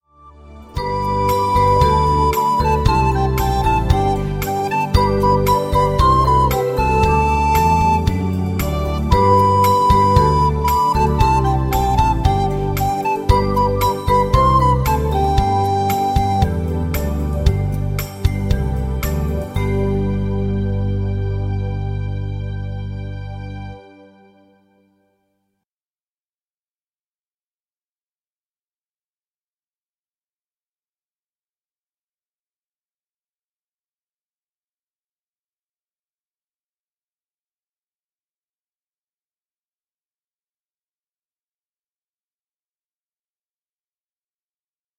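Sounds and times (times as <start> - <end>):
flute melody playback: 0.6 - 24.9.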